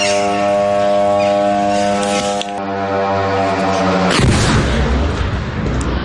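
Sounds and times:
attack drone engines buzzing: 0.0s - 6.0s
heavy roaring rumble after an oil refinery explosion: 0.0s - 6.0s
explosion at an oil refinery in Kstovo Nizhny Novgorod region Russia: 4.1s - 5.8s.

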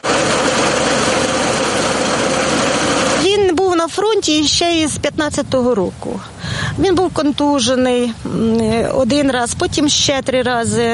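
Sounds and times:
heavy farm machinery engine running during harvest: 0.0s - 3.8s
speech: 4.0s - 10.9s.

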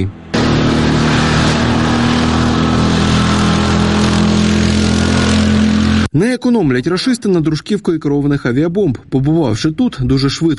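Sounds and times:
quad bike engine rumbling: 0.0s - 6.1s
speech: 6.1s - 10.5s.

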